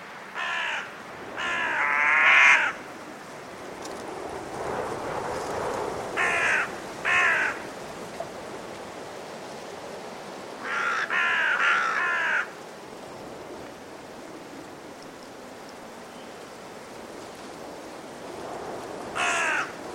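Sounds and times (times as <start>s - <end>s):
blustery force 6 winter wind gusting: 0.0s - 19.9s
carrion crow cawing before roosting in winter trees: 0.4s - 2.8s, 6.2s - 7.6s, 10.6s - 12.6s, 19.2s - 19.8s.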